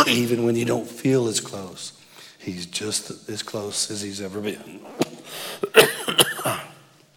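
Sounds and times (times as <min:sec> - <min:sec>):
speech: 0:00.0 - 0:06.7
rough throaty coughs: 0:05.6 - 0:06.8.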